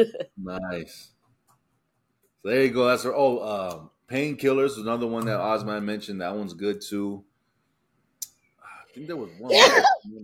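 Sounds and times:
speech: 0:00.0 - 0:01.2, 0:02.4 - 0:07.3, 0:09.0 - 0:10.2
person sneezing: 0:09.5 - 0:10.0.

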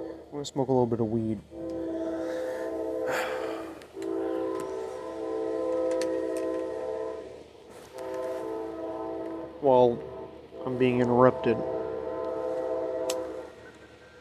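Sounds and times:
low rumble of rail traffic: 0:00.0 - 0:14.1
train horn blasts: 0:00.0 - 0:14.1
speech: 0:00.4 - 0:01.6, 0:09.6 - 0:11.8.

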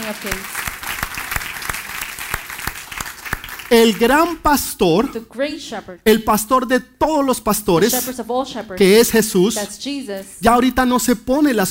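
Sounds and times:
audience applauding: 0:00.0 - 0:04.7
speech: 0:00.1 - 0:00.6, 0:03.7 - 0:11.6.

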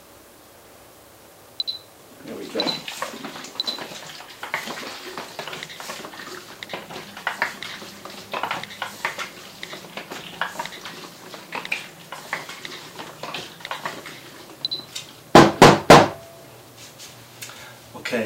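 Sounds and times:
DDX developer sloshing in a film developing tank: 0:02.2 - 0:15.0
film developing tank being tapped: 0:15.4 - 0:16.2.

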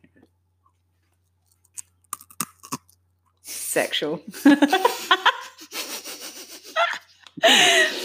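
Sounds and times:
crunching a mouthful of barbecue crisps: 0:01.4 - 0:03.0
speech: 0:03.7 - 0:05.2
laughter: 0:04.4 - 0:08.0.

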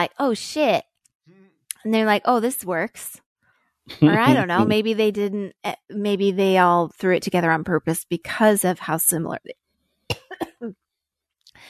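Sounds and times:
speech: 0:00.0 - 0:00.9, 0:01.8 - 0:03.2, 0:03.9 - 0:09.6, 0:10.6 - 0:10.8
person coughing: 0:04.0 - 0:04.8, 0:10.1 - 0:10.7.

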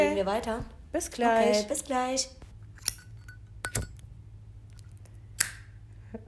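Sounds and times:
low steady hum: 0:00.0 - 0:06.2
speech: 0:00.2 - 0:02.4
lighter flame igniting: 0:02.4 - 0:05.9
lighter being flicked: 0:02.8 - 0:04.0, 0:04.7 - 0:05.8.

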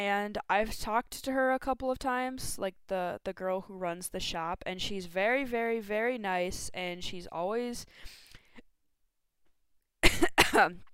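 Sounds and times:
speech: 0:00.0 - 0:08.2, 0:10.5 - 0:10.9
person coughing from popcorn stuck in the throat: 0:10.0 - 0:10.8.

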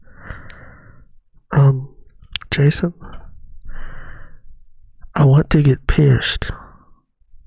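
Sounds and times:
heavy breathing close to the microphone: 0:00.0 - 0:01.2, 0:03.1 - 0:04.5
speech: 0:02.6 - 0:03.1, 0:05.6 - 0:06.6.

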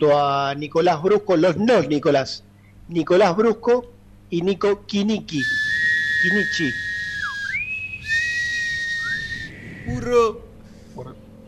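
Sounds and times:
speech: 0:00.0 - 0:05.6, 0:06.2 - 0:06.8, 0:09.9 - 0:10.4
room noise: 0:04.3 - 0:11.4
person whistling a sliding, wavering melody: 0:05.4 - 0:10.0.

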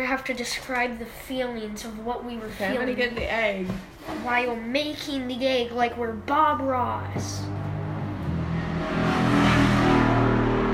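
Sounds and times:
speech: 0:00.1 - 0:07.6
motorcycle passing by: 0:06.8 - 0:10.7.

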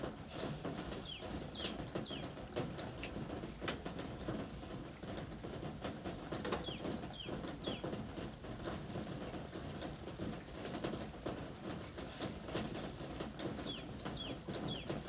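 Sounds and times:
rain on a roof under the eaves on a rainy-season day: 0:00.0 - 0:15.0
bird chirps: 0:00.9 - 0:02.3, 0:06.5 - 0:08.1, 0:13.4 - 0:15.0.

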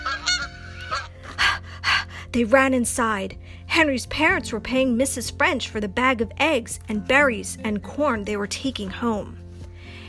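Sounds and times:
goose honking: 0:00.0 - 0:01.2
speech: 0:02.3 - 0:09.4.

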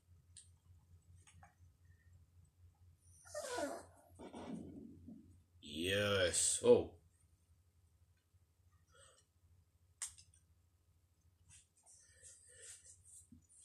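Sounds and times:
dog whimpering and whining: 0:03.1 - 0:04.0
speech: 0:05.9 - 0:07.0.

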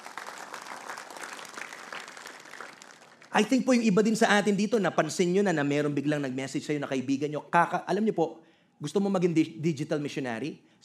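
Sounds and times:
congregation applause in a church during a sermon: 0:00.0 - 0:03.7
speech: 0:03.3 - 0:10.8.

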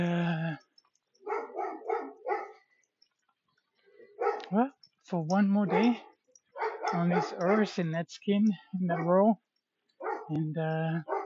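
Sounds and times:
dog barking: 0:01.2 - 0:02.7, 0:04.1 - 0:04.6, 0:05.6 - 0:07.8, 0:08.9 - 0:09.2, 0:10.0 - 0:10.4, 0:11.0 - 0:11.2
speech: 0:04.5 - 0:06.1, 0:06.9 - 0:09.4, 0:10.3 - 0:11.1.

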